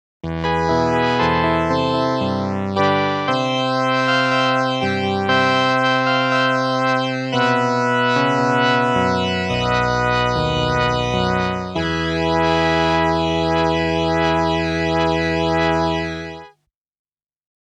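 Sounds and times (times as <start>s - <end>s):
analog synthesizer: 0.2s - 16.5s.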